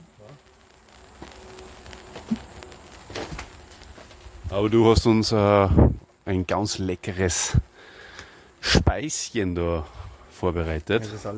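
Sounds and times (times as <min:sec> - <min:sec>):
faint steady hum: 0:00.0 - 0:11.3
soft irregular patter of raindrops: 0:00.0 - 0:11.3
speech: 0:04.5 - 0:07.7, 0:08.9 - 0:11.3.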